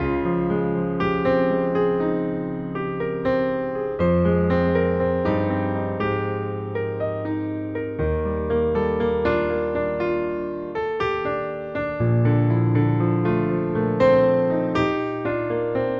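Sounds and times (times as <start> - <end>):
piano doodle: 0.0 - 15.9.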